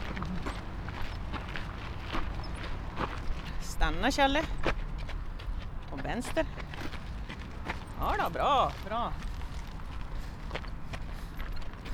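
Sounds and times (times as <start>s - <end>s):
footsteps of several people walking with a dog outdoors: 0.0s - 11.9s
speech: 3.8s - 4.8s, 6.0s - 6.6s, 8.0s - 9.2s.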